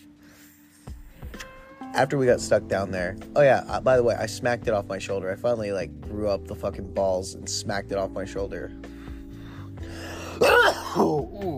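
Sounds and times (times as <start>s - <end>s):
speech: 2.0s - 8.9s, 10.4s - 11.5s
person coughing after using a vape pen: 10.2s - 11.5s.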